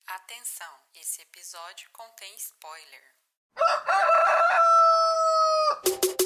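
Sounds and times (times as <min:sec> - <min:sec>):
speech: 0:00.3 - 0:05.0
rooster crowing: 0:03.6 - 0:05.9.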